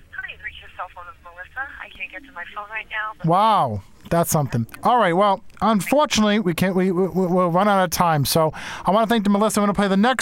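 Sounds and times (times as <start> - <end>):
thin tinny voice through a telephone line: 0.2 - 3.6
speech: 0.8 - 10.1.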